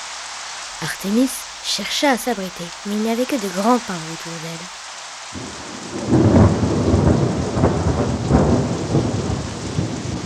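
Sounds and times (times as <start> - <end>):
sudden heavy rain pouring: 0.0 - 10.2
speech: 0.8 - 5.6
deep thunder rumbling: 5.4 - 10.2.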